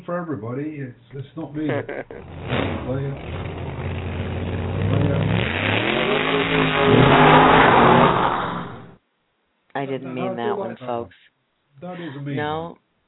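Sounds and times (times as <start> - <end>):
speech: 0.0 - 3.6, 9.8 - 12.8
laughter: 1.3 - 3.2
drag race car engine revving: 2.1 - 9.0.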